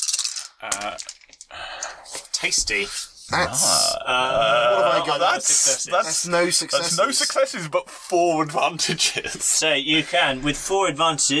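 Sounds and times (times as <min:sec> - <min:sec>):
dice clattering across a hard table: 0:00.0 - 0:01.5
speech: 0:00.6 - 0:11.3
voice murmuring: 0:01.6 - 0:05.7.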